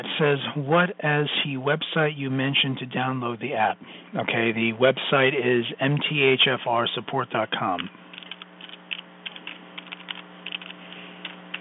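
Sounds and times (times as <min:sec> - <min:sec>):
speech: 0:00.0 - 0:08.0
typing on a computer keyboard: 0:08.1 - 0:11.6.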